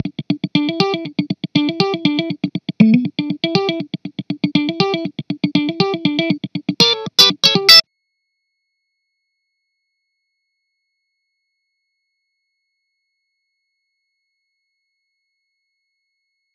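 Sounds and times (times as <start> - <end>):
dry amp funk guitar: 0.0 - 7.8.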